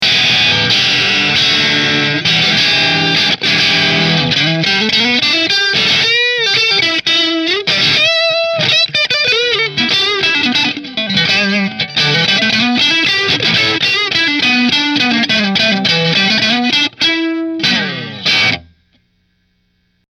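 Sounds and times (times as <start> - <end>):
Grosh Strat electric guitar in position 5 through Marshall amplifier: 0.0 - 20.0.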